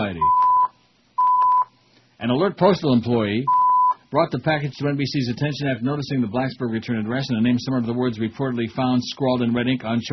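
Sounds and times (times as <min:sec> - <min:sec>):
loud steady electronic alert beeps: 0:00.2 - 0:01.7, 0:03.5 - 0:04.0
speech: 0:02.2 - 0:10.1.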